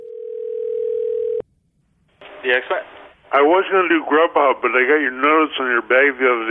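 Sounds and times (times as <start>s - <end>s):
telephone ringing tone at start of a call to a restaurant: 0.0s - 1.4s
speech: 2.4s - 6.4s.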